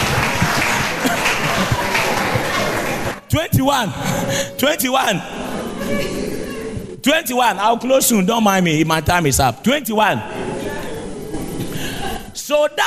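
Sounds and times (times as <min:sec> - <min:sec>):
crowd clapping and cheering: 0:00.0 - 0:03.3
laughter: 0:00.0 - 0:07.2, 0:10.0 - 0:12.4
speech: 0:03.4 - 0:06.3, 0:07.0 - 0:10.4, 0:12.4 - 0:12.8.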